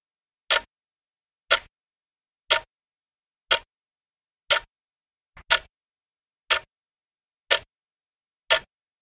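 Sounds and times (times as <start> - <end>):
mantel clock ticking: 0.5 - 0.7, 1.5 - 1.7, 2.5 - 2.7, 3.5 - 3.7, 4.5 - 4.7, 5.4 - 5.7, 6.5 - 6.7, 7.5 - 7.7, 8.5 - 8.7.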